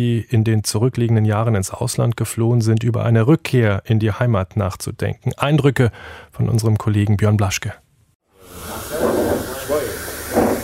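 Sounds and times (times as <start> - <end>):
speech: 0.0 - 7.8
espresso machine hissing and steaming in a small coffee house: 8.4 - 10.6.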